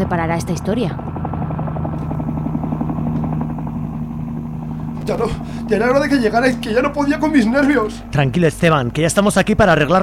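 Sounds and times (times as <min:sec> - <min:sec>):
speech: 0:00.0 - 0:01.2, 0:05.1 - 0:10.0
landing helicopter rotor blades thumping: 0:00.0 - 0:10.0.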